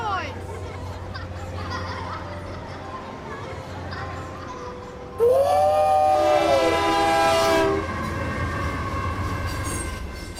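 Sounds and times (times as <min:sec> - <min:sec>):
laughter: 0:00.1 - 0:05.1
loud whistled imitation of a freight train horn: 0:05.2 - 0:10.0.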